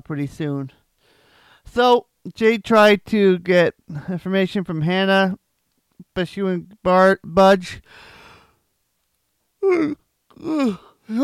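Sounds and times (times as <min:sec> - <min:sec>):
speech: 0:00.1 - 0:00.8, 0:01.7 - 0:05.4, 0:06.2 - 0:08.1, 0:09.6 - 0:11.2
person yawning: 0:09.6 - 0:11.2.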